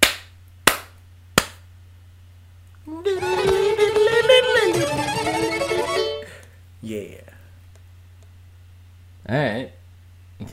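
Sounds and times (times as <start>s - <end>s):
sharp hand slaps: 0.0s - 1.6s
voice making a long wavering fiddle-like tone: 2.9s - 6.3s.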